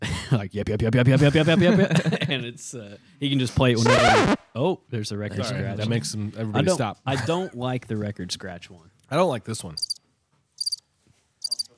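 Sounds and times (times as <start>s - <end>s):
speech: 0.3s - 9.9s
laughter: 1.2s - 2.5s
high trilling cricket chirps: 9.8s - 10.0s, 10.6s - 10.8s, 11.4s - 11.7s.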